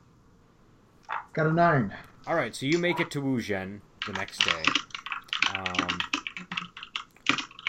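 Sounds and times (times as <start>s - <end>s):
speech: 1.3s - 4.9s, 5.5s - 6.6s
typing on a computer keyboard: 4.0s - 7.6s.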